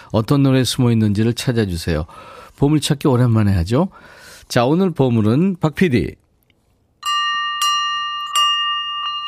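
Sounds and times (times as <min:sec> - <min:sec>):
speech: 0:00.1 - 0:06.2
clear bright bell ringing: 0:07.0 - 0:09.2.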